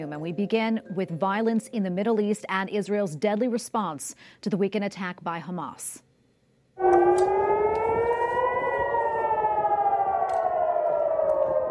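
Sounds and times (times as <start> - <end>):
speech: 0.0 - 6.1
civil defense warning sirens wailing in Jerusalem Israel during rocket attacks: 6.8 - 11.6.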